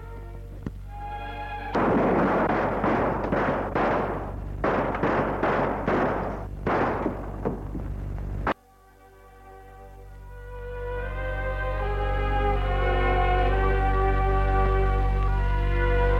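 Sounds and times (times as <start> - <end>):
faint low hum: 0.0 - 16.1
revolver gunshots: 1.7 - 7.8.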